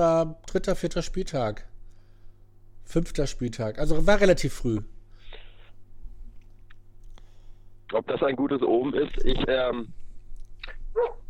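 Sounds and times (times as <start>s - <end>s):
speech: 0.0s - 1.7s, 2.9s - 4.9s, 7.9s - 10.0s, 11.0s - 11.2s
low hum: 0.0s - 11.2s
dog barking: 11.0s - 11.2s.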